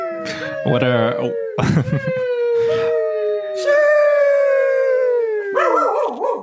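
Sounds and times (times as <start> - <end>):
dog howling: 0.0 - 6.4
speech: 0.2 - 2.8, 3.6 - 3.9
laughter: 0.3 - 3.0
dog yelping: 5.5 - 6.4.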